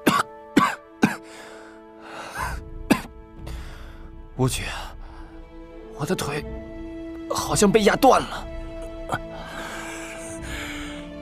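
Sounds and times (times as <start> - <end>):
man coughing from choking on dust and smoke after an explosion: 0.0 - 1.2, 2.9 - 3.1
speech: 4.4 - 4.9, 6.0 - 6.7, 7.3 - 8.5, 9.1 - 9.4.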